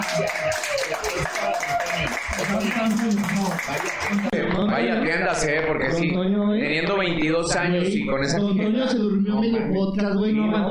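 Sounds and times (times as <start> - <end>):
group applause with many hands clapping: 0.0 - 4.4
speech: 0.2 - 0.6, 1.5 - 10.6.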